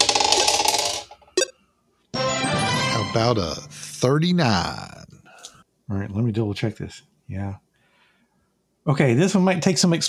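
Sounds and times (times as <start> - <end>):
100-sided dice rattling across a hard surface: 0.0 - 1.2
speech: 3.1 - 5.0, 5.9 - 7.6, 8.8 - 10.0.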